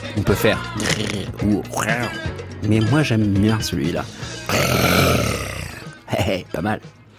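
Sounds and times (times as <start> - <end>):
speech: 0.2 - 5.5, 6.1 - 7.0
person imitating a roar with the mouth: 4.5 - 5.9.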